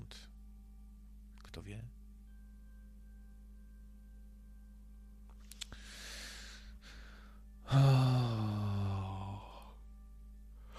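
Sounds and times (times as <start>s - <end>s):
speech: 1.6s - 2.0s
person yawning: 7.6s - 9.8s.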